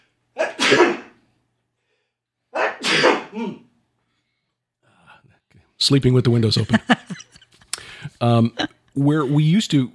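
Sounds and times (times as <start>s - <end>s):
person sneezing: 0.4s - 1.2s, 2.5s - 3.7s
speech: 0.7s - 1.0s, 5.8s - 7.4s, 8.2s - 9.9s
laughter: 6.5s - 8.7s.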